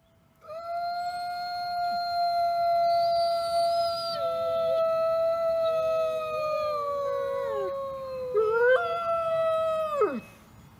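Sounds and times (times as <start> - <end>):
wolves howling in chorus: 1.8 - 10.2.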